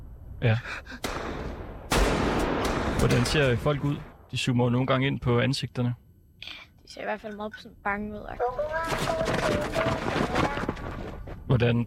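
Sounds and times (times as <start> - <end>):
speech: 0.4 - 1.5, 3.0 - 10.5, 11.1 - 11.8
heavy blast: 0.9 - 4.7
sharp gunshots: 1.0 - 4.3, 8.8 - 11.0.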